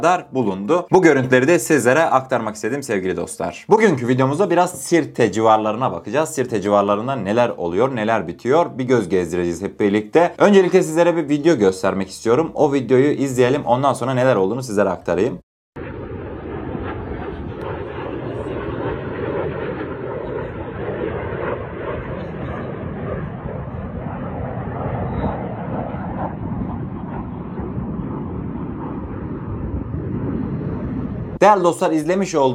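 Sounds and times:
speech: 0.0 - 15.5, 31.4 - 32.5
MiG-29 fighter jets flying overhead: 15.8 - 32.5.

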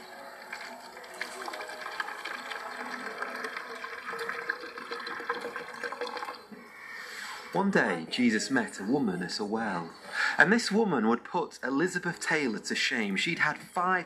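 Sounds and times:
water pouring and splashing from a leaking bucket: 0.0 - 6.5
speech: 7.6 - 14.0.

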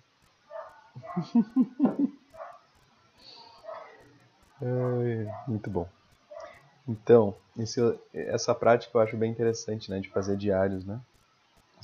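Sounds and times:
pack of dogs barking while passing by: 0.5 - 1.4, 2.4 - 2.6, 3.6 - 4.1, 5.2 - 5.7, 6.3 - 6.6
laughter: 1.0 - 2.2
speech: 1.2 - 2.2, 4.6 - 6.0, 6.9 - 11.1.

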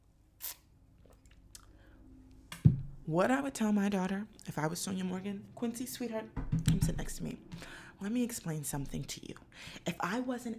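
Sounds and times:
faint wet mouth clicks: 0.4 - 1.7
slurping sip of coffee: 0.4 - 1.7
speech: 3.1 - 10.5.

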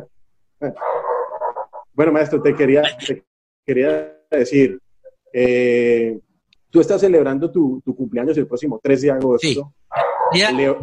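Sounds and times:
speech: 0.0 - 1.1, 2.0 - 10.8
dog yowling and barking: 0.8 - 2.9, 9.9 - 10.8.

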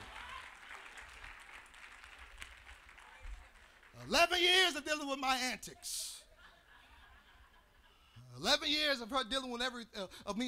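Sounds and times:
roomful of people applauding: 0.0 - 4.6
speech: 4.0 - 6.1, 8.4 - 10.4
laughter: 6.0 - 8.2.

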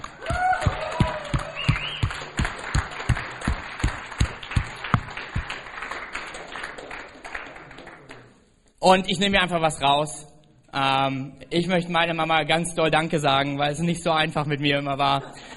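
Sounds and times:
person cheering: 0.0 - 2.1
audience applauding mothers: 0.0 - 8.3
sharp claps: 0.0 - 8.4
speech: 8.8 - 15.5.

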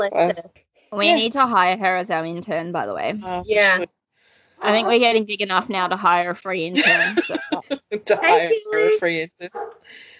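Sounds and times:
speech: 0.0 - 4.0, 4.6 - 10.1
dog barking: 4.6 - 5.2, 9.5 - 9.8
laughter: 6.8 - 9.0.

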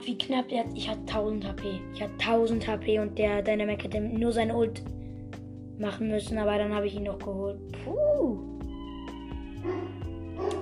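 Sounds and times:
speech: 0.0 - 5.0, 5.8 - 8.5
dog barking in short sharp bursts: 9.6 - 10.5.

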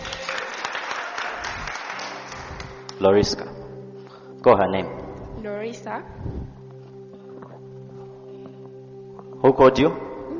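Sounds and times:
audience clapping at a religious gathering: 0.0 - 3.1
speech: 3.0 - 3.6, 4.4 - 6.4, 9.4 - 10.1.

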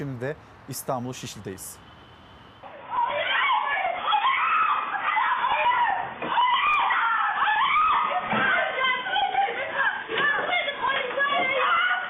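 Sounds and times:
speech: 0.0 - 1.9
several other voices shouting: 2.6 - 12.0
woman screaming and crying out for help during abduction: 2.8 - 12.0.

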